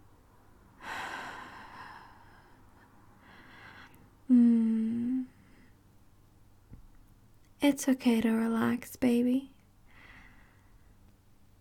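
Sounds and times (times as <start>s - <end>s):
brief voiced breathy sound: 0.8s - 5.8s
speech: 7.6s - 9.6s.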